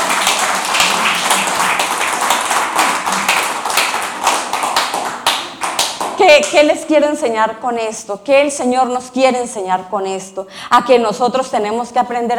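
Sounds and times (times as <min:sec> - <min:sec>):
audience clapping applause: 0:00.0 - 0:06.2
speech: 0:06.3 - 0:12.3.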